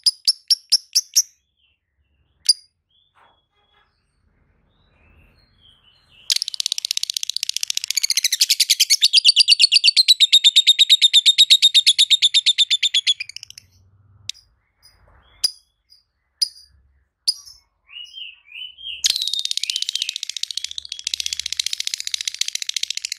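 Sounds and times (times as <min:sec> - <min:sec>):
lovebird song with buzzy chattering trill: 0:00.0 - 0:01.3, 0:06.3 - 0:14.4, 0:16.4 - 0:16.7, 0:17.3 - 0:18.3, 0:19.0 - 0:23.1.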